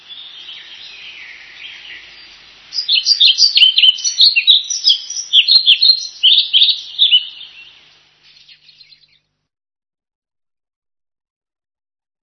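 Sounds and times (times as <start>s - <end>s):
flycatcher song: 0.0s - 9.2s.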